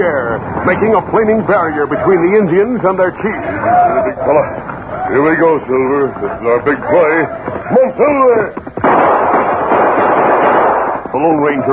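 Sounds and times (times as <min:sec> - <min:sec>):
speech: 0:00.0 - 0:08.9, 0:11.2 - 0:11.7
gunshots fired from horseback over heads: 0:08.6 - 0:11.7.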